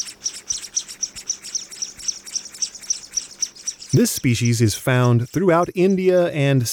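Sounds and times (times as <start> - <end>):
scaly-breasted munia Loncura punctulata giving thin high-pitched chirps: 0.0 - 5.3
speech: 3.9 - 6.7.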